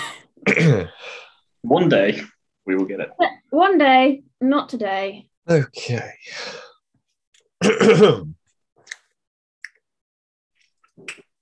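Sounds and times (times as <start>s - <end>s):
speech: 0.6s - 1.0s, 1.6s - 6.7s, 7.6s - 8.4s
small sharp wet mouth clicks: 10.8s - 11.4s.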